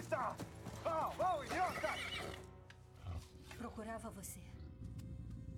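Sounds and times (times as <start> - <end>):
speech: 0.1 - 2.4, 3.6 - 4.7
horses neighing in a film scene: 1.2 - 3.2.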